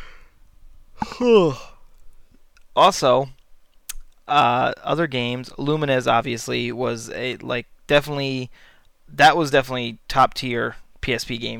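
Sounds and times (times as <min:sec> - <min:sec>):
person yawning: 0:01.0 - 0:01.8
speech: 0:01.2 - 0:01.7, 0:02.8 - 0:03.4, 0:04.3 - 0:11.5.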